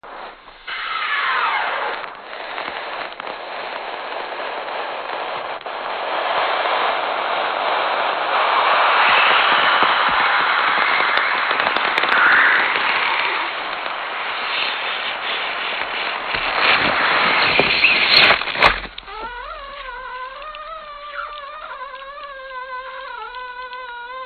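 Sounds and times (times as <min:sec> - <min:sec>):
tremor: 0:00.0 - 0:24.2
crunch: 0:15.8 - 0:23.9.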